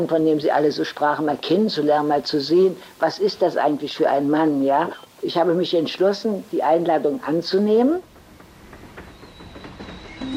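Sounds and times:
speech: 0.0s - 8.1s
passenger train travelling rumbling: 7.6s - 10.3s
thin constant high whine of passenger train: 8.0s - 10.3s.

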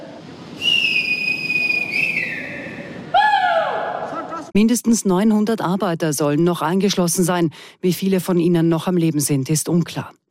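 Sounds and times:
faint noise: 0.0s - 10.2s
rescue workers blowing whistles in front of tunnels: 0.6s - 3.5s
speech: 4.6s - 10.2s.

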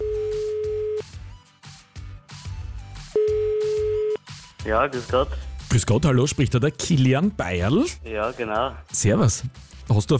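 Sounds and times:
telephone tone humming: 0.0s - 1.0s, 3.2s - 4.2s
speech: 4.7s - 10.1s.

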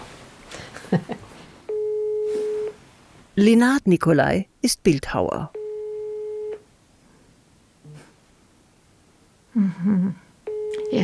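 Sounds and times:
speech: 0.9s - 1.2s, 3.4s - 5.6s, 9.6s - 10.2s
telephone call tone while phoning someone: 1.7s - 2.8s, 5.5s - 6.6s, 10.5s - 11.0s.

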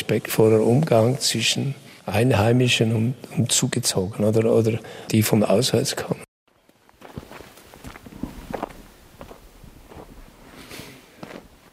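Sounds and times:
speech: 0.1s - 6.2s
footsteps walking through the lower part of a village: 6.6s - 11.7s.

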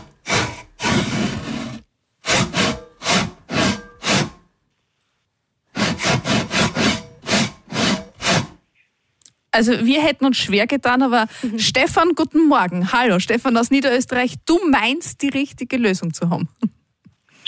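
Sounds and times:
hand saw rasping through wood: 0.0s - 4.4s, 5.7s - 8.6s
speech: 9.6s - 16.8s.

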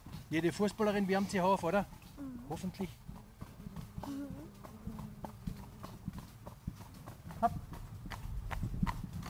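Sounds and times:
horse hooves walking at an even pace: 0.0s - 9.2s
speech: 0.3s - 3.0s, 4.0s - 4.8s, 7.4s - 7.6s
person murmuring: 2.2s - 2.9s, 3.8s - 5.4s.

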